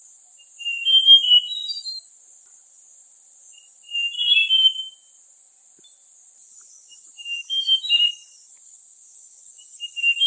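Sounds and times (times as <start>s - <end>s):
White-tailed Robin calling on Gunung Brinchang, Cameron Highlands, Malaysia: 0.4s - 2.1s, 3.5s - 5.1s, 5.8s - 8.6s, 9.3s - 10.2s.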